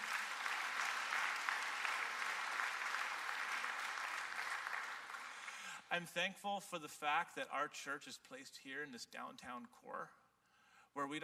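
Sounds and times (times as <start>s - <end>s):
large crowd in a church applauding: 0.0s - 5.7s
speech: 5.9s - 10.2s, 10.9s - 11.2s.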